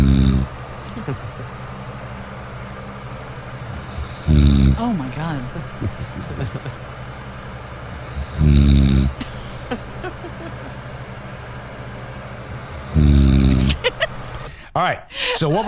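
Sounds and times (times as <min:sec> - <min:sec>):
man snoring while asleep: 0:00.0 - 0:01.3, 0:03.6 - 0:05.0, 0:07.8 - 0:09.9, 0:12.4 - 0:13.9
laughter: 0:00.8 - 0:01.7, 0:05.4 - 0:06.9, 0:09.2 - 0:10.8, 0:13.6 - 0:14.5
speech: 0:01.0 - 0:01.4, 0:04.3 - 0:06.9, 0:14.8 - 0:15.6.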